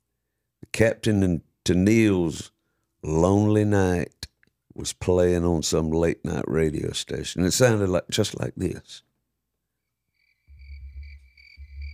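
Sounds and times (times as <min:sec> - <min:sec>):
speech: 0:00.8 - 0:04.2, 0:04.8 - 0:09.1
crickets chirping at night: 0:10.0 - 0:11.9.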